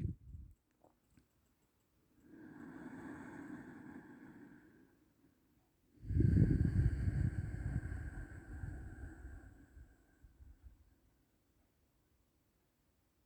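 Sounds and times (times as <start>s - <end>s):
ujjayi breathing during a guided breathing practice: 2.3s - 5.1s, 6.0s - 10.3s.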